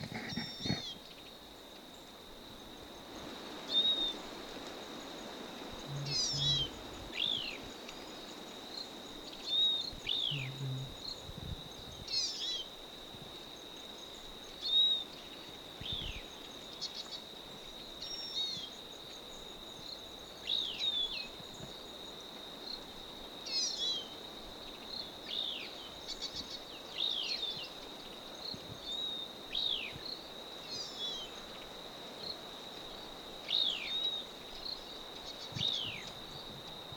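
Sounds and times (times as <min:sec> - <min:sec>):
bird giving short high downward-sweeping calls: 0:00.0 - 0:01.0, 0:05.9 - 0:06.8, 0:10.3 - 0:10.9
constant high insect trill: 0:00.0 - 0:36.9.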